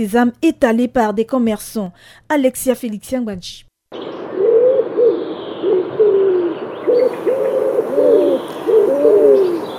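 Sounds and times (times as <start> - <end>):
speech: 0.0 - 4.1
pigeons cooing at a market: 4.2 - 9.7.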